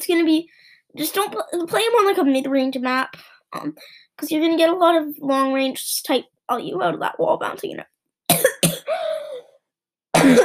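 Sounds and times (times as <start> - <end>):
speech: 0.0 - 8.4
person coughing: 8.3 - 9.5, 10.1 - 10.4.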